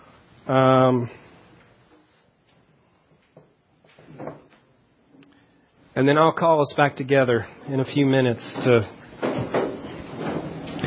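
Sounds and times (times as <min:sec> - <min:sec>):
speech: 0:00.5 - 0:01.2, 0:06.0 - 0:09.0
chair scraping across the floor with a squealing drag: 0:08.4 - 0:10.8
furniture bumps and shuffles as furniture is shifted: 0:08.5 - 0:10.8.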